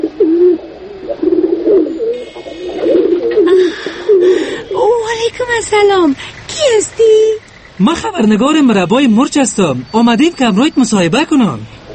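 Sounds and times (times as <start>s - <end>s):
pigeon cooing in low throaty rolling phrases: 0.0s - 7.5s
faint higher hiss: 0.0s - 11.9s
light chirping: 1.8s - 11.9s
speech: 5.4s - 11.8s.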